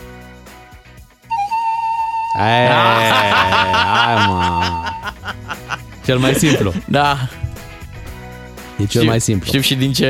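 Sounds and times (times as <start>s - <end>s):
person whistling a tune: 1.3s - 5.2s
laughter: 2.4s - 7.4s
speech: 2.4s - 7.4s, 8.8s - 10.0s.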